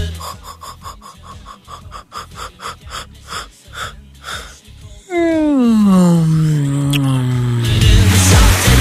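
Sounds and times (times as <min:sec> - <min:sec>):
person yawning: 0:00.1 - 0:08.7
short rhythmic breathy puffs: 0:00.2 - 0:04.7.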